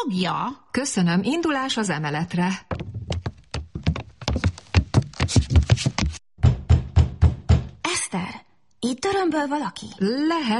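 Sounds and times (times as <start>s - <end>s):
speech: 0.0s - 3.1s, 8.9s - 10.5s
knocking on a locked door from inside: 2.7s - 5.2s, 6.0s - 7.8s.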